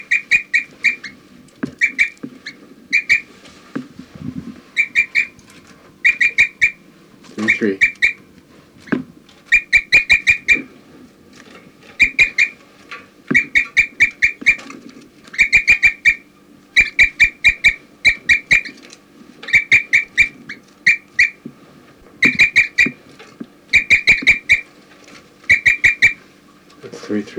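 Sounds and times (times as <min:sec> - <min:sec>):
bird chirping and giving flight calls: 0:00.0 - 0:03.4, 0:04.6 - 0:06.8, 0:07.4 - 0:10.7, 0:11.9 - 0:12.6, 0:13.3 - 0:18.8, 0:19.4 - 0:21.4, 0:22.1 - 0:24.8, 0:25.4 - 0:26.3
speech: 0:07.6 - 0:07.9.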